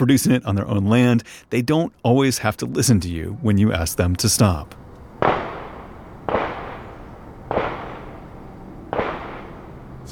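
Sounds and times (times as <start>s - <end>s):
speech: 0.0s - 5.4s
gunshots from a nearby shooting range: 5.2s - 9.9s.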